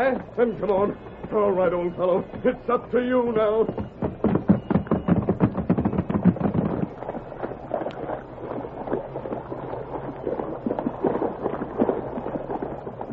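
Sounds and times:
speech: 0.0s - 4.0s
rapid heavy hoofbeats of horses: 0.0s - 8.4s
churning rush of water as horses plunge into a swirling river: 0.0s - 13.1s.

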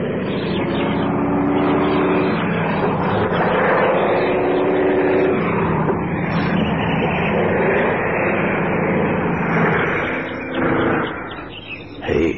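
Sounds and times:
small four-seater propeller plane flying overhead: 0.0s - 12.0s.

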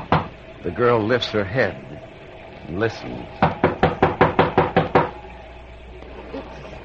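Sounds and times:
firm knocks on a wooden door: 0.0s - 0.3s, 3.4s - 5.2s
speech: 0.6s - 2.0s, 2.7s - 3.6s.

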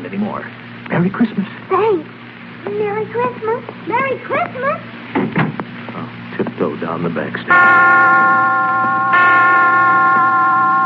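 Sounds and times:
speech: 0.1s - 5.3s, 6.0s - 10.2s
resonant hospital chimes striking five o'clock: 7.5s - 10.8s.

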